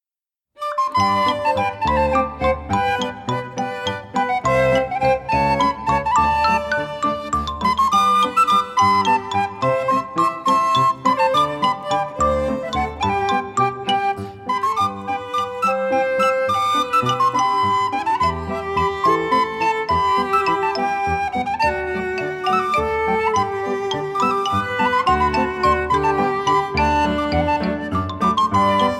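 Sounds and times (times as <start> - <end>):
tin whistle playing Irish dance music: 0.6 - 23.4, 24.2 - 28.9
piano: 0.6 - 28.9
violin playing Irish dance music: 0.6 - 28.9
vibraphone: 0.9 - 28.9
accordion: 1.0 - 28.9.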